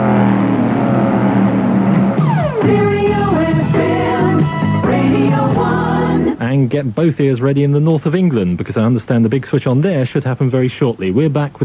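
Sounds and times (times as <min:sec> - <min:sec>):
racing car engine screaming past: 0:00.0 - 0:02.6
racing car high revving and gear changes: 0:00.0 - 0:05.4
speech: 0:06.6 - 0:11.6.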